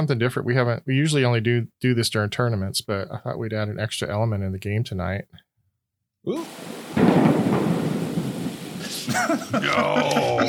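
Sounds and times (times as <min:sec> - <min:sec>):
speech: 0:00.0 - 0:05.4, 0:06.2 - 0:07.5, 0:09.2 - 0:10.4
rain-like hiss and crackling texture: 0:06.3 - 0:10.1
thunderclap sound effect for a lightning strike in a game: 0:06.5 - 0:09.6
laughter: 0:08.8 - 0:10.4.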